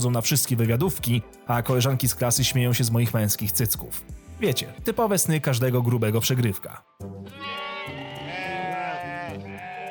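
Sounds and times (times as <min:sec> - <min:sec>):
speech: 0:00.0 - 0:07.6
sheep bleating: 0:07.2 - 0:09.8.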